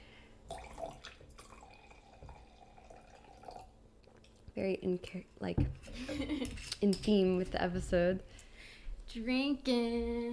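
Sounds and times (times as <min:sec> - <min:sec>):
drink pouring into a glass: 0:00.4 - 0:04.4
speech: 0:04.6 - 0:08.5, 0:09.1 - 0:10.3.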